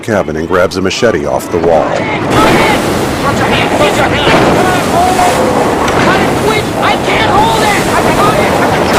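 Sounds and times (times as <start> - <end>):
speech: 0.0 - 7.4
heavy wind buffeting: 1.5 - 8.9
sharp water splashes: 1.9 - 8.9
violent waves crashing against the stern of a boat: 1.9 - 8.9.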